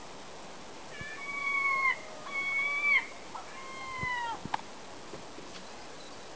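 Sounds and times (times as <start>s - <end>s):
herring gull mew call in Shaldon: 1.0s - 4.4s.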